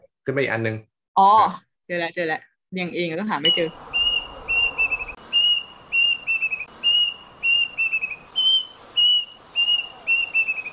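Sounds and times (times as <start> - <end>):
speech: 0.2 - 3.9
plaintive cuckoo whistling call: 3.4 - 10.7
faint hiss: 3.5 - 10.7.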